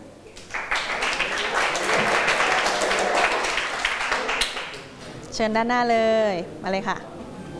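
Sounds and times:
group applauding in a room: 0.4s - 4.9s
speech: 5.4s - 7.2s.

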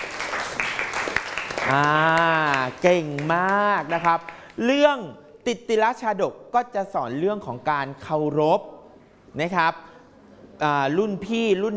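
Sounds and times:
students clapping in a school classroom: 0.0s - 4.6s
speech: 1.7s - 9.9s, 10.6s - 11.7s.

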